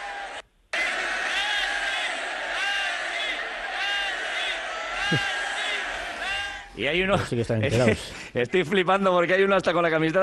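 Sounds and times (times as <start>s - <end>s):
large stadium crowd chanting a player's name: 0.0s - 6.7s
speech: 5.1s - 5.4s, 6.8s - 10.2s.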